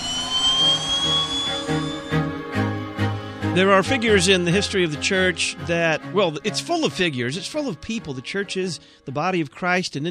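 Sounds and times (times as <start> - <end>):
jet engine roar with high-pitched whine: 0.0 - 3.5
speech: 3.6 - 10.1.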